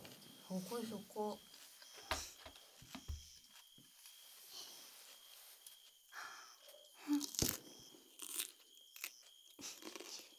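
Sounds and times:
speech: 0.5s - 1.6s
crunchy chewing: 7.0s - 10.3s.

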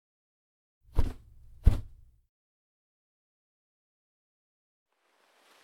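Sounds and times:
soft thuds: 1.0s - 2.1s
warm towel wiping foam from the ears: 1.0s - 2.1s.

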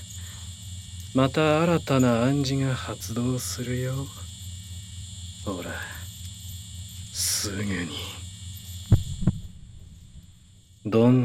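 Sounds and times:
faint steady hum: 0.0s - 11.2s
speech: 1.2s - 4.2s, 5.4s - 6.0s, 7.2s - 8.2s, 10.8s - 11.2s
heartbeat deep low thumps: 8.8s - 10.6s.

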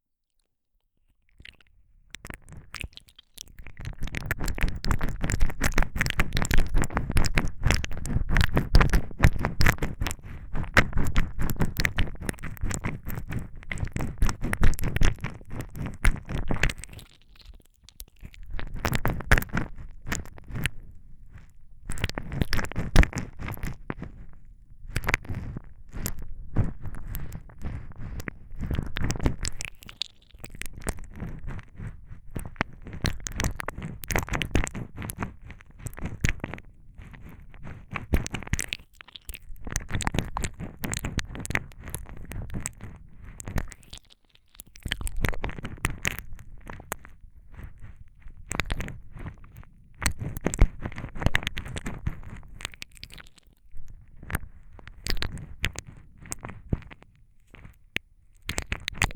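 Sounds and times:
ASMR ear licking sounds: 1.3s - 59.1s.

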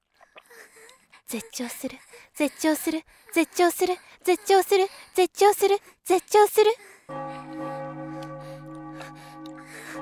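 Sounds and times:
speech: 1.3s - 7.2s
celebratory bells ringing together: 7.1s - 9.9s.

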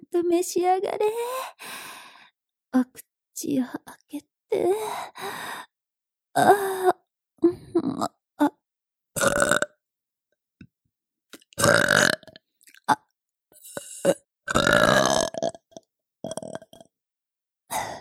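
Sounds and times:
speech: 0.2s - 1.9s, 2.7s - 5.7s, 6.4s - 7.0s
mother burping: 9.2s - 9.8s, 11.6s - 13.0s, 13.7s - 16.9s.

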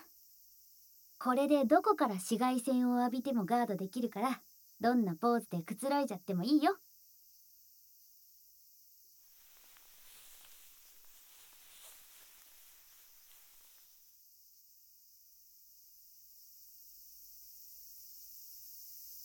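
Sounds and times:
speech: 1.2s - 6.8s
rustling: 9.3s - 14.0s
cicadas buzzing: 9.3s - 14.2s.

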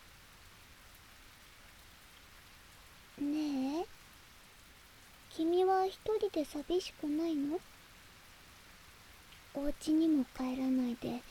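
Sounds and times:
steady pouring rain: 0.0s - 11.2s
speech: 5.4s - 7.7s, 9.6s - 11.2s.

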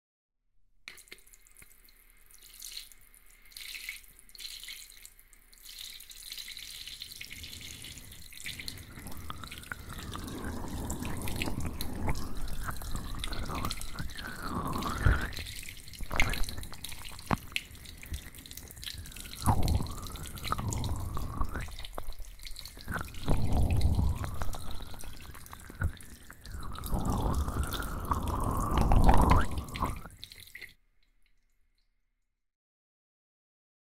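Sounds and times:
water running to rinse off before a bath: 0.9s - 30.7s.

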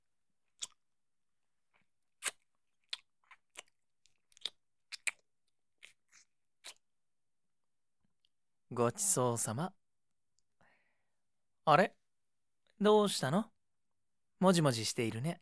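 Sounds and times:
melon being chewed in soft wet crunchy bites: 0.5s - 0.8s, 2.2s - 6.8s
speech: 8.8s - 9.8s, 11.7s - 12.0s, 12.8s - 13.5s, 14.4s - 15.4s.

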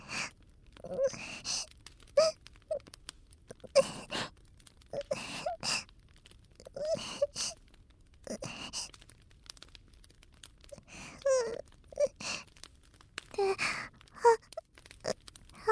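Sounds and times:
woman crying and sobbing: 0.8s - 2.4s, 3.5s - 4.3s, 5.0s - 5.8s, 6.7s - 7.6s, 10.7s - 12.4s, 13.4s - 14.6s.

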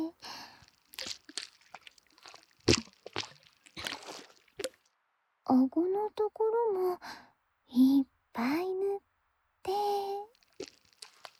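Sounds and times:
foam lather spread thickly on the face under the nose: 0.6s - 4.8s, 10.4s - 11.3s
speech: 5.5s - 9.0s.

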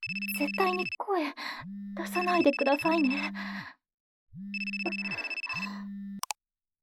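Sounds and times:
phone ringing with a bright electronic ringtone: 0.0s - 1.0s, 2.0s - 3.4s, 4.5s - 5.8s
speech: 0.4s - 3.8s.

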